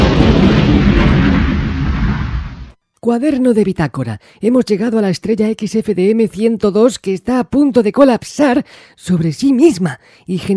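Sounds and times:
spaceship exploding in a science-fiction scene: 0.0 - 2.8
speech: 3.1 - 10.5.

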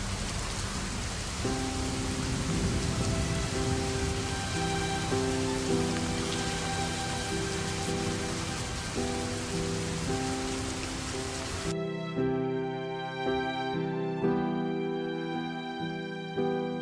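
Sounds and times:
heavy rain: 0.0 - 11.8
faint sustained musical tones: 0.8 - 16.7.

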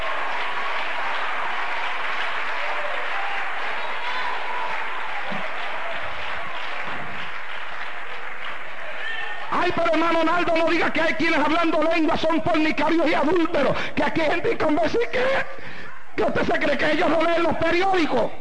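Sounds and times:
congregation applause at a church service: 0.0 - 13.5
speech: 9.7 - 15.6, 16.2 - 18.3.

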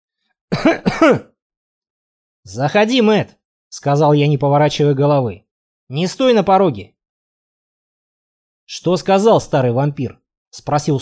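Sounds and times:
cautious throat-clearing cough near a staircase: 0.5 - 1.4
speech: 0.6 - 1.3, 2.5 - 7.0, 8.7 - 11.0.

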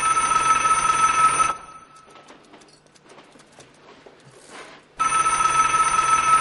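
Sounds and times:
telephone ringing on a desk in a dim office: 0.0 - 2.3, 5.0 - 6.3.

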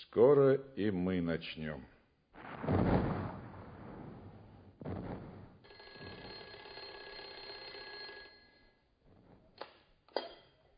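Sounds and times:
speech: 0.1 - 2.0
loud noisy bursts and thumps: 2.4 - 5.7
telephone ringing at a wartime front-line post: 5.7 - 8.9.

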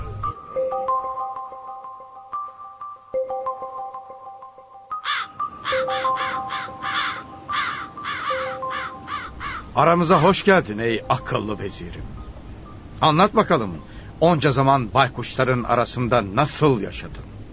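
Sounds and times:
soft sustained tonal melody: 0.0 - 14.8
crows cawing in harsh loud calls: 5.0 - 9.8
speech: 9.8 - 12.2, 13.0 - 17.3.

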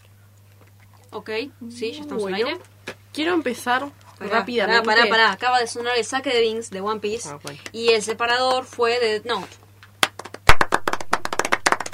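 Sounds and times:
speech: 1.1 - 9.6
group of people clapping: 10.0 - 11.9.

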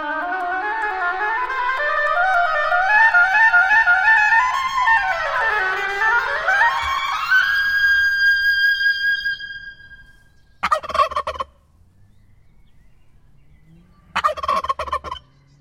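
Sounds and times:
turkey gobbling: 0.8 - 11.6, 13.6 - 15.3.

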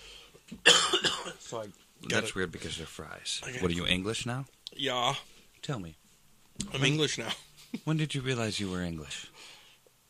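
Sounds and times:
harsh coughs: 0.6 - 1.5
speech: 1.5 - 6.0, 6.6 - 10.0.

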